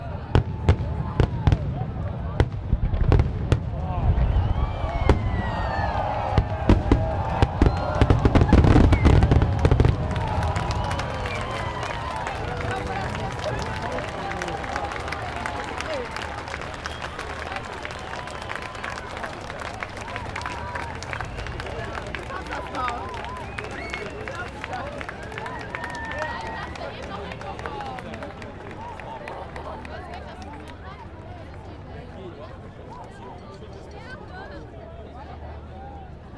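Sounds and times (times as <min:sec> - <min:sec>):
fireworks exploding: 0:00.4 - 0:05.7, 0:06.3 - 0:11.5
audience applause: 0:04.5 - 0:32.2.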